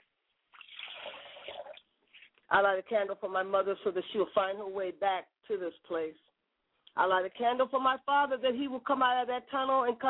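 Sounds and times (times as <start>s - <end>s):
liquid poured out as a libation: 0.5s - 1.9s
speech: 2.5s - 6.3s, 7.0s - 10.0s.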